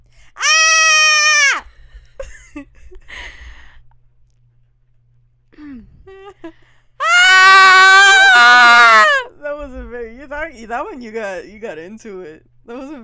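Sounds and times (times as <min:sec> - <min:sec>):
human horror-movie style scream: 0:00.4 - 0:01.6, 0:07.0 - 0:09.3
speech: 0:10.6 - 0:13.0.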